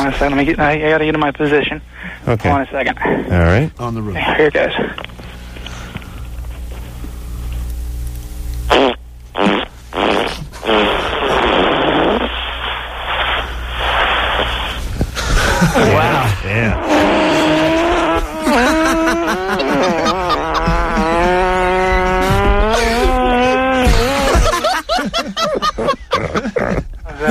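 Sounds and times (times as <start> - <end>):
speech: 0.0 - 5.2
loud farts: 8.7 - 24.8
laughter: 15.2 - 27.2.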